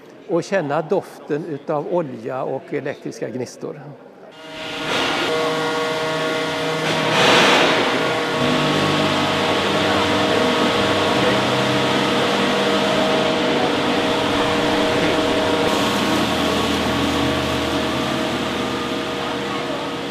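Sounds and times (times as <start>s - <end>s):
speech: 0.3s - 4.6s
large radio transmitter alternator spinning up at Grimeton: 4.4s - 20.0s
roaring surge of radio transmitter alternator: 4.4s - 20.0s.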